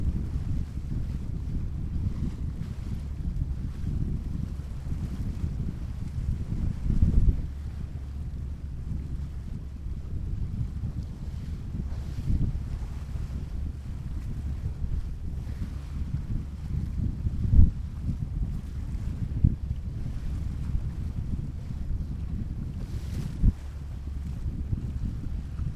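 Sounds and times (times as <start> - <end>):
ocean wind and water deep steady rumble: 0.0 - 25.7.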